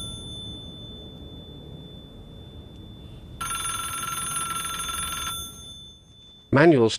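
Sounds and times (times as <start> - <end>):
low steady rumble: 0.0 - 6.4
standalone public payphone ringing: 0.0 - 6.7.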